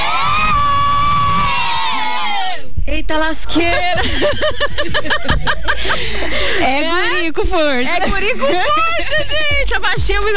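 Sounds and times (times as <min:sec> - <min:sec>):
group of children shouting together: 0:00.0 - 0:02.7
speech: 0:03.1 - 0:10.3
laughter: 0:03.5 - 0:09.7.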